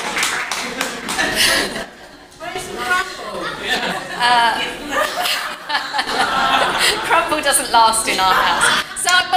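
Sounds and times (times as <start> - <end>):
small live audience applause: 0.0 - 1.7
overlapping chatter from people: 0.0 - 9.3
chuckles and laughter: 0.4 - 9.3
speech: 4.2 - 5.5, 6.9 - 9.3.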